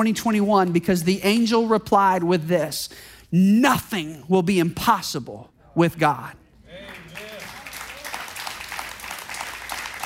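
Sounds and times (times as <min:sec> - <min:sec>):
speech: 0:00.0 - 0:06.4
audience clapping: 0:06.7 - 0:10.0.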